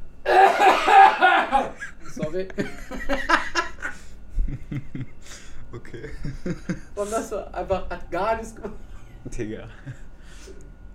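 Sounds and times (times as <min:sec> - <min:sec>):
person coughing: 0:00.3 - 0:01.9
laughter: 0:00.3 - 0:07.3, 0:08.6 - 0:10.1
speech: 0:02.3 - 0:03.4, 0:05.9 - 0:10.0.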